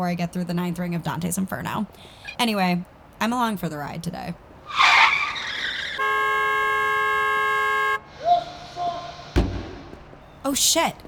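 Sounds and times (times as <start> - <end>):
speech: 0.0 - 4.9, 10.5 - 11.0
faint squeaks: 1.5 - 6.0, 8.0 - 11.0
car tire screech in a city: 4.4 - 10.4
long steady car horn blast: 6.0 - 10.2
sharp thump: 9.3 - 10.3.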